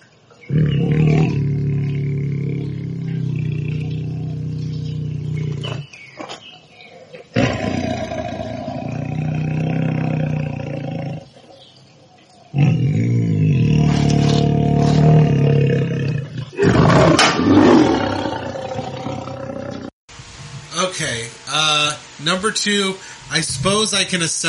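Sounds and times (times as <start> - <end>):
tiger roaring with low rumbling growls: 0.5 - 6.0, 7.0 - 11.9, 12.5 - 19.9
speech: 22.4 - 24.4.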